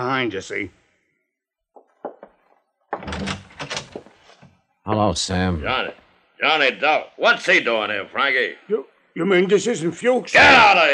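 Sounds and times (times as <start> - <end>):
speech: 0.0 - 0.8, 4.9 - 10.9
door swinging open with a creaky scraping rumble: 1.8 - 4.6
door latch clicks and rattles: 2.9 - 4.2.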